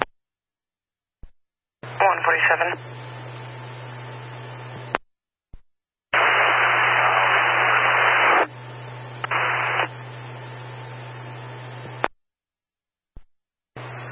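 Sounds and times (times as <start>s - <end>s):
crackling radio static: 1.9s - 2.9s, 6.2s - 10.1s
speech: 2.1s - 3.0s.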